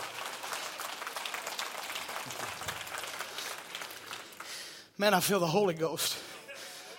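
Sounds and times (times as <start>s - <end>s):
crowd applause: 0.0s - 4.9s
speech: 5.0s - 6.3s.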